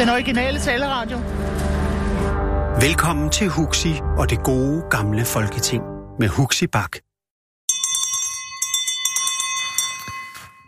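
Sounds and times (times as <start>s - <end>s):
speech: 0.0s - 1.6s, 2.8s - 7.1s
bell rung to open a meeting: 7.7s - 10.6s.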